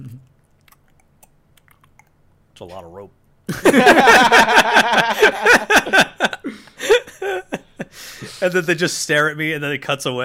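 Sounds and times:
gum chewing by mouth: 0:00.0 - 0:02.2
speech: 0:02.6 - 0:06.7, 0:08.4 - 0:10.2
laughter: 0:03.5 - 0:08.4.

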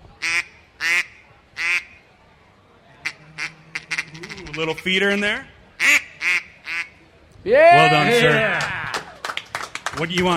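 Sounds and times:
duck call blown imitating a quacking duck: 0:00.2 - 0:02.0, 0:03.0 - 0:04.8, 0:05.8 - 0:07.0
speech: 0:04.6 - 0:05.5, 0:07.4 - 0:08.8, 0:10.0 - 0:10.3.

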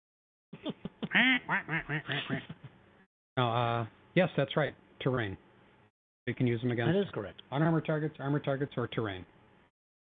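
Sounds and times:
duck quacking: 0:01.0 - 0:02.5
speech: 0:01.2 - 0:02.6, 0:03.4 - 0:05.4, 0:06.3 - 0:09.3.

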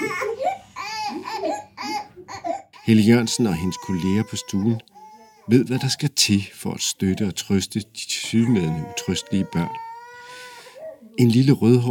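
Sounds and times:
toddler crying in a nursery: 0:00.0 - 0:05.5, 0:08.2 - 0:10.9
speech: 0:02.9 - 0:09.9, 0:11.2 - 0:11.8.

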